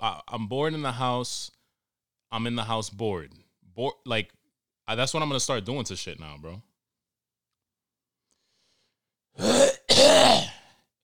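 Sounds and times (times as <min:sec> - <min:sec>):
speech: 0:00.0 - 0:01.6, 0:02.3 - 0:06.7, 0:09.4 - 0:10.4
harsh throaty coughing: 0:09.4 - 0:10.7
throat clearing: 0:09.4 - 0:10.7.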